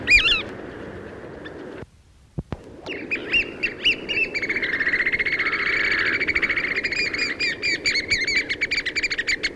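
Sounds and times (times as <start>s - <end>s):
Chatham Island oystercatcher piping whistles and trilling on the Chatham Islands: 0.1s - 0.5s, 2.9s - 9.5s.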